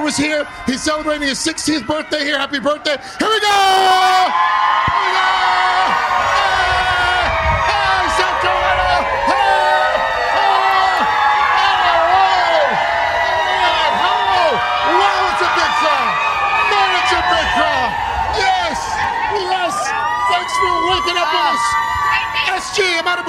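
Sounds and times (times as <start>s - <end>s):
large outdoor crowd cheering in the rain: 0.0s - 23.2s
people whooping and shouting in an outdoor crowd: 0.0s - 23.2s
speech: 0.1s - 5.3s, 22.6s - 23.2s.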